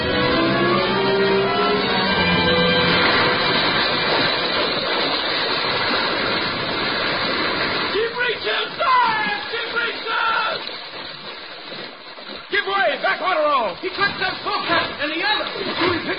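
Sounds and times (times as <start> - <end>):
low hum: 0.0 - 7.8
water surging and churning as a whale breaches: 0.0 - 16.1
choppy breaking splashes: 1.7 - 16.1.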